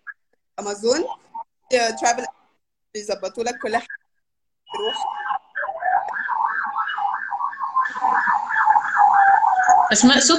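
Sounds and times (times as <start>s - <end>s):
speech: 0.6s - 4.0s, 4.8s - 5.3s, 9.9s - 10.3s
police car siren wailing outside: 4.7s - 10.3s.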